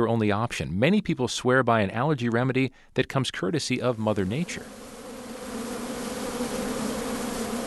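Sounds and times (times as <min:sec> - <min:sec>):
speech: 0:00.0 - 0:05.0
swarm of bees buzzing: 0:04.1 - 0:07.6.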